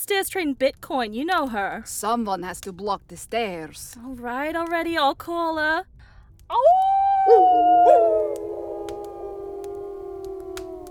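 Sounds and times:
speech: 0.0 - 5.9, 6.5 - 8.5
wolves howling: 6.6 - 10.8.

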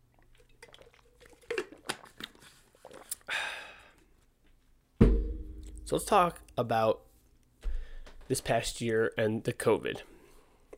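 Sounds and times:
mouth clicks and lip smacks: 0.1 - 3.3
slurping sip of water: 0.2 - 4.0
thump: 5.0 - 5.6
speech: 5.9 - 7.0, 8.3 - 10.1.

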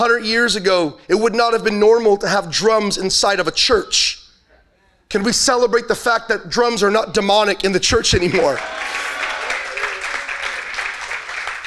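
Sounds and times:
speech: 0.0 - 4.2, 5.1 - 9.3
audience giving a polite golf clap: 8.3 - 11.6.

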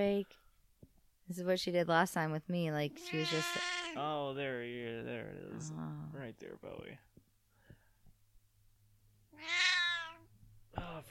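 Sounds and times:
speech: 0.0 - 0.4, 1.3 - 7.2, 10.8 - 11.1
old female cat meowing after waking up: 3.0 - 4.0, 9.3 - 10.3.

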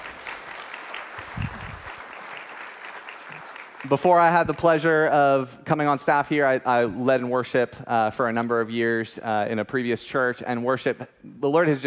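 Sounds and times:
church audience applauding a worship team: 0.0 - 4.6
speech: 3.8 - 11.8.

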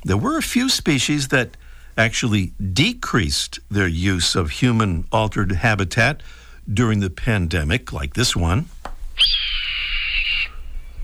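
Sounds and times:
speech: 0.0 - 9.4
red-tailed hawk call: 9.2 - 10.8.

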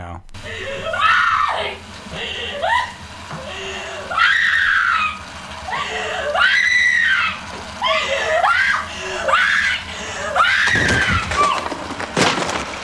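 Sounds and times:
woman gasping: 0.0 - 4.1, 8.8 - 10.4
laughter: 0.0 - 11.7
woman screaming in long breathy cries in a horror movie: 0.4 - 11.7.

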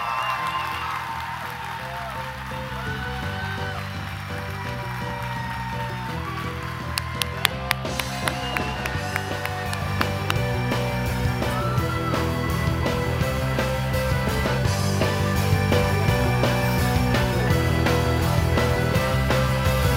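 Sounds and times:
audience applauding: 0.0 - 19.9
sharp individual claps: 6.9 - 10.5.

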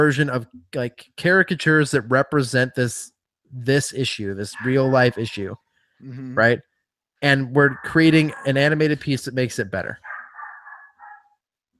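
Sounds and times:
speech: 0.0 - 10.1
dog barking: 4.5 - 5.2, 7.6 - 8.8, 10.0 - 11.4.

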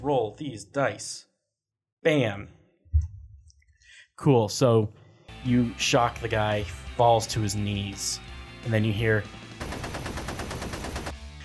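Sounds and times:
speech: 0.0 - 1.3, 2.0 - 3.1, 4.2 - 9.9
machine gun firing a short burst: 9.6 - 11.2.

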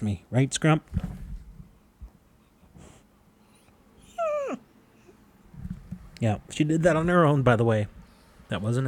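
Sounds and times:
speech: 0.0 - 1.1, 6.2 - 8.8
dog grumbling whine from boredom: 4.0 - 5.2.

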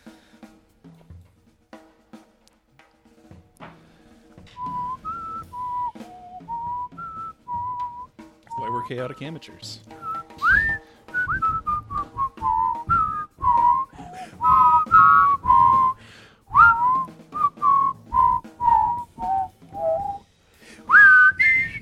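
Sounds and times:
several people whistling a wavering tune together: 4.5 - 21.7
speech: 8.8 - 10.0.

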